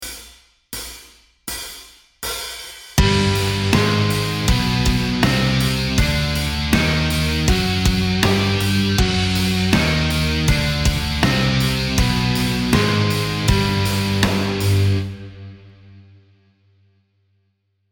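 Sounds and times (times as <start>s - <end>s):
G Byzantine double harmonic minor music: 3.0s - 16.2s.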